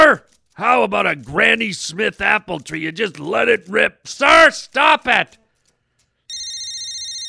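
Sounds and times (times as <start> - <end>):
speech: 0.1 - 5.4
telephone ringing with electronic trill: 6.3 - 7.2.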